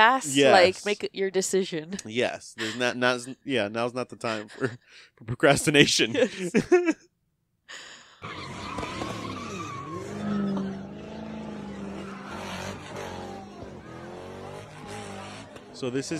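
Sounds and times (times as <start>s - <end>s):
speech: 0.0s - 7.1s, 15.8s - 16.1s
laughter: 2.0s - 7.0s, 14.7s - 16.1s
drifting car engine revving: 8.2s - 16.1s
drifting car tires screeching: 8.2s - 16.1s
voices and crowd noise murmuring: 9.9s - 16.1s.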